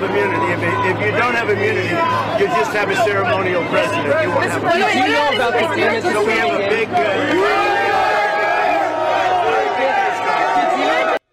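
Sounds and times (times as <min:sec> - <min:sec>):
speech: 0:00.0 - 0:07.9
large crowd of union workers cheering and shouting: 0:00.0 - 0:11.2.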